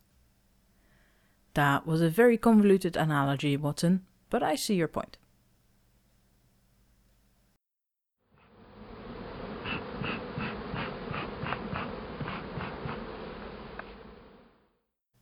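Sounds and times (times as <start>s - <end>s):
speech: 1.6s - 5.2s
bees buzzing: 8.4s - 14.5s.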